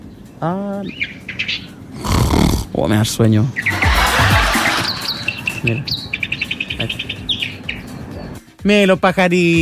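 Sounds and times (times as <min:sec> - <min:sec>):
small birds chirping: 0:00.0 - 0:08.6
speech: 0:00.4 - 0:02.1, 0:02.7 - 0:03.8, 0:05.6 - 0:06.0, 0:06.8 - 0:07.1, 0:08.6 - 0:09.6
short drawn-out vocal sound from a person: 0:02.0 - 0:02.8.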